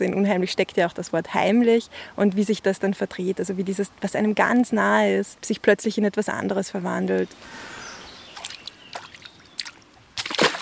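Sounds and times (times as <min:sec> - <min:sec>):
speech: 0:00.0 - 0:07.8
murky dark water sloshing at the edge of a small lake in Vienna: 0:07.3 - 0:10.5
soft water splashes: 0:08.3 - 0:10.5.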